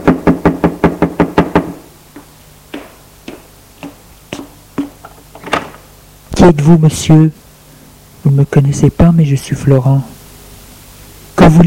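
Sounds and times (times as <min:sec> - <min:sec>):
knocking on a door: 0:00.0 - 0:05.8
speech: 0:06.4 - 0:07.4, 0:08.2 - 0:10.2.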